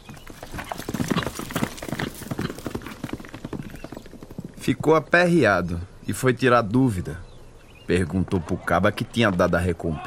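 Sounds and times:
horse hooves clip-clopping as a rider mounts: 0:00.0 - 0:05.3
speech: 0:04.7 - 0:07.3, 0:07.9 - 0:10.0.

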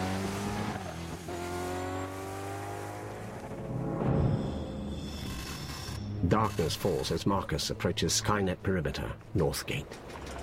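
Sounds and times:
robotic motorbike engine droning along a road: 0:00.0 - 0:06.5
speech: 0:06.3 - 0:10.4.

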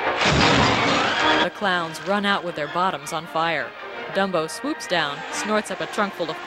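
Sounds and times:
fire engine smashing into a fake burning building: 0:00.2 - 0:01.4
roaring clattering rumble of a fire engine: 0:00.2 - 0:02.4
speech: 0:01.6 - 0:06.4.

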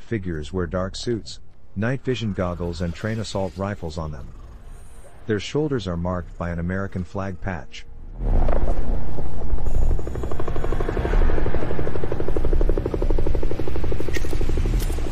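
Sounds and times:
speech: 0:00.1 - 0:04.4, 0:05.3 - 0:09.4
helicopter rotor hovering overhead: 0:09.4 - 0:15.1.

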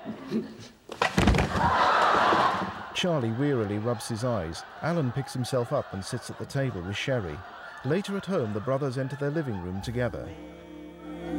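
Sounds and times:
person falling to the floor after missing a chair: 0:00.9 - 0:02.7
burst of laughter: 0:01.5 - 0:10.3
speech: 0:03.0 - 0:10.6.

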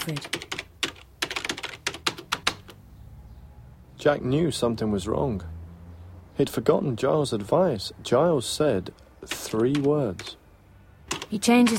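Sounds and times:
speech: 0:00.0 - 0:00.5, 0:04.0 - 0:05.6, 0:06.4 - 0:10.4, 0:11.3 - 0:11.7
typing on a word processor keyboard at a desk: 0:00.0 - 0:02.8, 0:09.2 - 0:10.4, 0:11.1 - 0:11.7.

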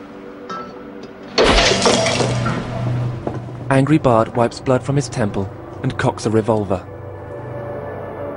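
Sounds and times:
vase shattering as it is smashed over a man's head: 0:01.3 - 0:03.1
glass shards clattering and ringing: 0:01.4 - 0:02.6
speech: 0:03.7 - 0:06.9.

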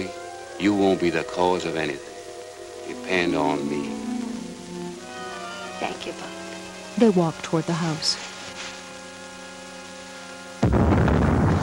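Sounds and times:
speech: 0:00.0 - 0:02.1, 0:02.9 - 0:04.0, 0:05.8 - 0:06.4, 0:07.0 - 0:08.3
faint steady hum: 0:00.0 - 0:11.6
distant cannon shot with rolling rumble: 0:10.6 - 0:11.6.

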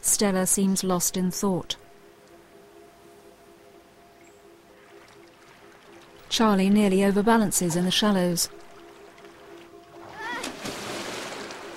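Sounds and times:
speech: 0:00.1 - 0:01.8, 0:06.4 - 0:08.6
steady churning rushing river water: 0:04.4 - 0:11.7
heavy splash of a person dropping into a river: 0:10.0 - 0:11.7
person crying out: 0:10.1 - 0:10.6.

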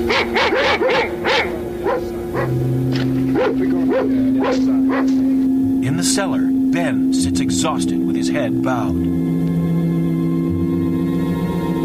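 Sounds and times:
leashed police dogs barking as they charge across a field: 0:00.0 - 0:05.6
speech: 0:00.0 - 0:09.6
steady low hum and tonal drone: 0:00.0 - 0:11.8.

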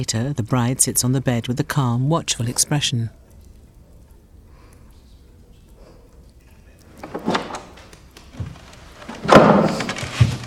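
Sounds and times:
speech: 0:00.0 - 0:03.2
bedroom door opening: 0:06.9 - 0:10.4.

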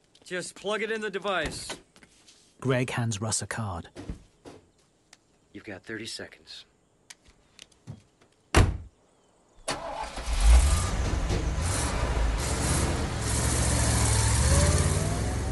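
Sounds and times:
speech: 0:00.3 - 0:01.8, 0:02.6 - 0:04.2, 0:05.6 - 0:06.7
car engine cranking, starting and revving: 0:09.7 - 0:15.5.

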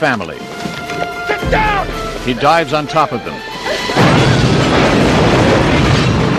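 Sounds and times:
speech: 0:00.0 - 0:05.1
limousine engine exploding from a planted bomb: 0:01.5 - 0:06.3.

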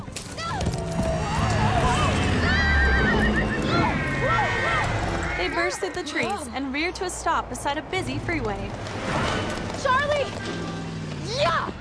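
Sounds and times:
horse whinnying while ridden fast through a forest: 0:01.0 - 0:06.4
speech: 0:05.7 - 0:11.8.

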